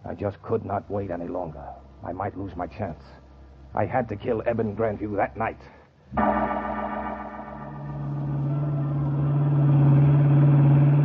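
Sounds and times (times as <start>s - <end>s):
speech: 0.2s - 6.8s
roadster engine droning along a twisting damp bayou road: 6.2s - 11.0s.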